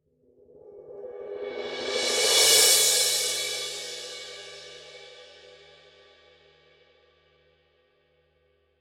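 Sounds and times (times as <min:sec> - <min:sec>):
18-inch thin crash cymbal roll: 0:01.6 - 0:05.7.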